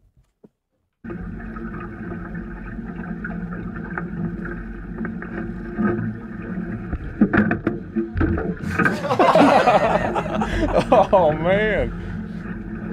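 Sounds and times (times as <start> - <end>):
boat engine rumbling: 1.1 - 12.9
laughter: 8.7 - 11.8
speech: 10.6 - 12.1.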